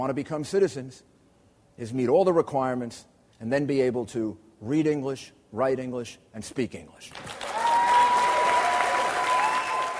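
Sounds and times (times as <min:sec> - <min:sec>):
speech: 0:00.0 - 0:01.2, 0:01.8 - 0:07.4
small crowd applauding at a political campaign event: 0:07.1 - 0:09.9.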